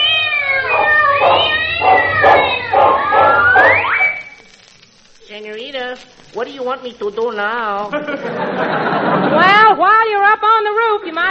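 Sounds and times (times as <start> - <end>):
cat yowling in wavering meows: 0.0 - 3.8
speech: 5.9 - 11.2
laughter: 7.9 - 9.8.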